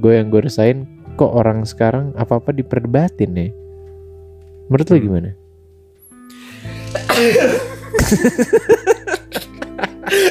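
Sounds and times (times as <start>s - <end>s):
speech: 0.0s - 3.6s, 4.7s - 5.4s, 7.2s - 10.3s
person sneezing: 6.3s - 7.8s
laughter: 6.4s - 10.3s.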